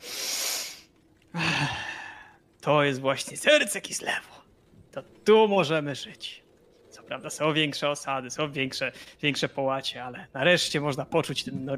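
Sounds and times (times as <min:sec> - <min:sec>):
person taking a long airy deep breath: 0:00.0 - 0:02.4
speech: 0:02.6 - 0:04.4, 0:05.0 - 0:06.4, 0:07.1 - 0:11.7.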